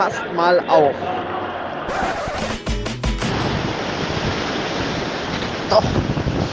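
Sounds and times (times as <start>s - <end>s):
speech: 0.0s - 1.3s, 5.7s - 6.1s
heavy Atlantic ocean wave crashing and breaking: 1.9s - 5.5s
Atlantic ocean surf roar: 3.3s - 5.7s.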